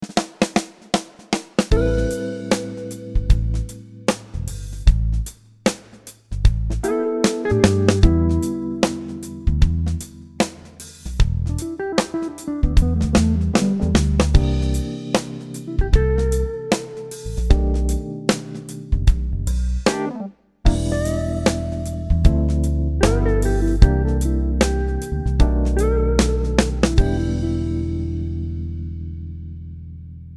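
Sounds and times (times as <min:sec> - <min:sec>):
swing backbeat drum beat: 0:00.0 - 0:28.1.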